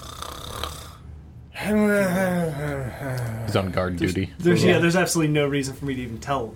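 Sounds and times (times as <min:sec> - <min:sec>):
person imitating loud snoring: 0:00.0 - 0:01.0, 0:01.6 - 0:03.6
speech: 0:01.6 - 0:02.2, 0:03.0 - 0:06.5.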